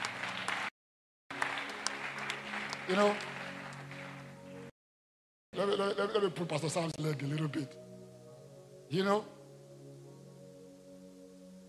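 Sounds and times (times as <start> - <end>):
church congregation clapping hands: 0.0 - 0.7, 1.3 - 4.7
speech: 2.9 - 3.3, 5.6 - 7.8, 8.9 - 9.4.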